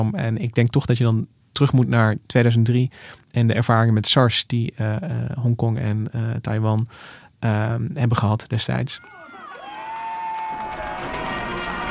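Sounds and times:
speech: 0.0 - 9.2
loud crowd cheering: 9.0 - 11.8
whoops from a crowd: 9.0 - 11.8.

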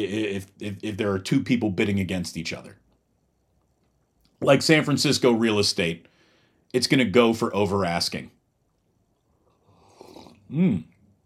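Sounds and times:
speech: 0.0 - 2.8, 4.4 - 6.1, 6.7 - 8.4, 10.5 - 10.9
slurping sip from a drink: 9.2 - 10.6.

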